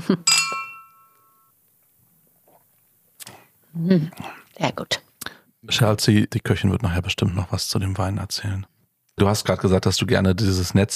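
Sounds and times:
speech: 0.1s - 0.4s, 3.8s - 5.0s, 5.6s - 10.9s
aperitif glasses clinking in a toast: 0.2s - 1.5s.

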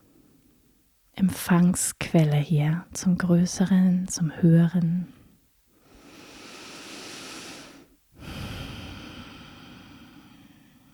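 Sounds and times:
speech: 1.2s - 5.2s
deep breathing during a guided meditation: 5.8s - 10.9s.

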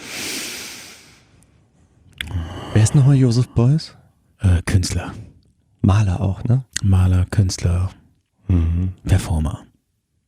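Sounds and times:
deep breath in: 0.0s - 1.4s, 2.3s - 2.8s
speech: 2.8s - 9.7s.

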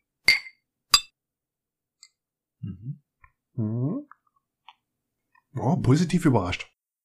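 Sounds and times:
beer bottles clinking in a toast: 0.2s - 1.1s
speech: 2.7s - 4.1s, 5.6s - 6.8s.

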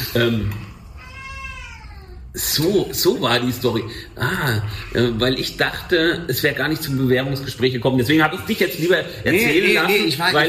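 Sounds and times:
speech: 0.1s - 0.6s, 2.3s - 10.4s
cat meowing loudly: 0.9s - 2.3s.

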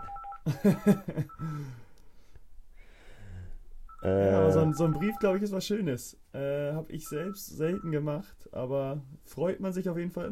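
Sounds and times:
telephone ringing: 0.0s - 0.6s, 3.9s - 5.4s, 7.0s - 8.0s
speech: 0.5s - 1.8s, 4.0s - 10.3s.

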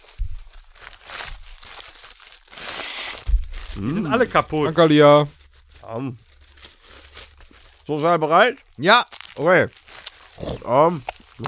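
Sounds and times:
chocolate candy wrapper crinkling: 0.0s - 11.4s
soft low thump: 0.2s - 0.6s, 3.3s - 3.8s
speech: 3.8s - 6.2s, 7.9s - 9.8s, 10.4s - 11.4s.

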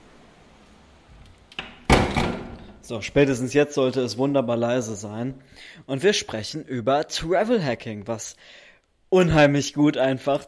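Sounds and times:
door thudding shut: 1.6s - 2.8s
speech: 2.9s - 10.4s.

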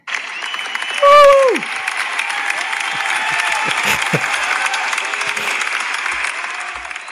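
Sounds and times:
sizable crowd applauding: 0.0s - 7.1s
laughter: 2.6s - 6.8s.

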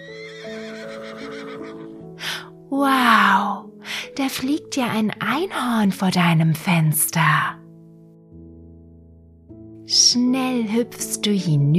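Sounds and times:
horse whinnying: 0.0s - 2.0s
speech: 2.7s - 3.5s, 4.2s - 7.6s, 9.9s - 11.7s.

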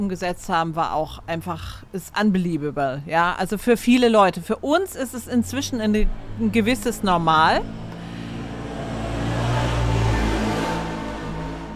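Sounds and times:
speech: 0.0s - 7.8s
motorbike engine droning past outside on the outskirts of a city: 5.2s - 11.7s.

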